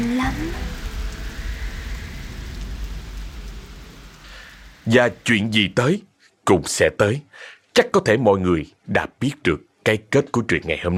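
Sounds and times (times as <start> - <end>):
deep low rumble: 0.0 - 5.8
heavy steady rain in wind: 0.0 - 7.7
speech: 4.9 - 10.9.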